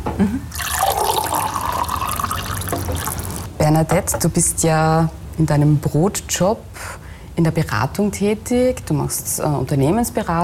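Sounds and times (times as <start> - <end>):
speech: 0.2 - 0.6, 3.7 - 10.4
water pouring into a glass: 0.5 - 3.5.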